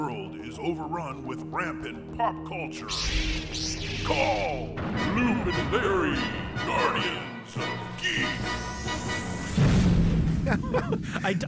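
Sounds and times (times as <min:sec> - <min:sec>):
speech: 0:00.6 - 0:09.2, 0:10.5 - 0:11.4
explosion: 0:04.8 - 0:06.1, 0:09.4 - 0:10.7
laughter: 0:10.3 - 0:11.4.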